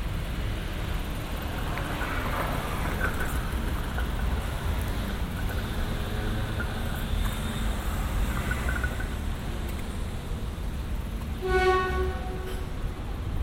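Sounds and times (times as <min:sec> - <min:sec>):
rumble of passing traffic on a busy city street: 0:00.0 - 0:13.4
clatter: 0:01.1 - 0:09.9.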